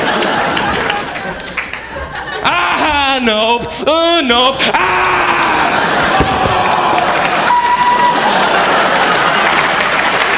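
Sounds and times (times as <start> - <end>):
audience applauding with dense clapping and crowd noise: 0.0 - 2.4, 5.3 - 10.3
laughter: 0.0 - 10.3
speech: 3.2 - 5.1.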